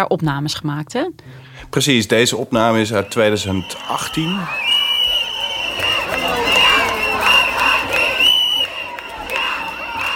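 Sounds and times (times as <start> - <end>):
speech: 0.0 - 4.7
dense outdoor crowd cheering at a women's march: 2.5 - 10.1.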